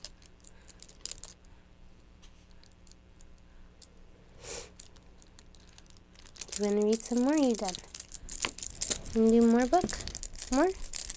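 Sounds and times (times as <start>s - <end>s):
low steady hum: 0.0s - 11.1s
keys jingling: 6.5s - 11.1s
speech: 6.6s - 7.9s, 9.2s - 10.8s.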